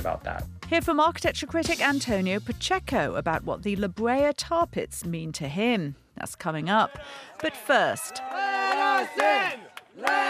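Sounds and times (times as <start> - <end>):
speech: 0.0 - 10.2
protesters chanting outside a private art museum in a former Masonic temple: 6.9 - 10.2.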